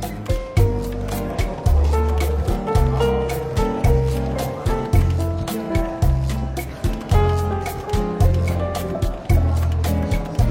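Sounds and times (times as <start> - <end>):
light bustle of a bookshop cafe in London: 0.0 - 10.5
soft relaxed jazz music: 0.0 - 10.5.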